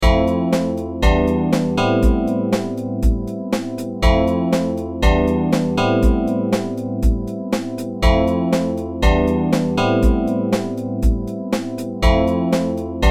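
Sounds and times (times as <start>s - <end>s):
chord progression: 0.0s - 13.0s.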